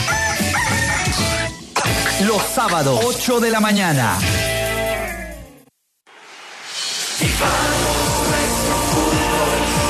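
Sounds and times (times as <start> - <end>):
rooster crowing: 0.0 - 1.6
speech: 2.2 - 4.5, 7.2 - 9.8.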